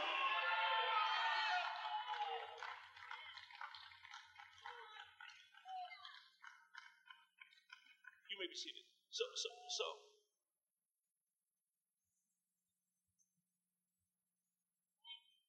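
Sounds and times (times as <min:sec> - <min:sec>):
church service audience shouting hallelujah: 0:00.0 - 0:02.6
speech: 0:08.5 - 0:10.2.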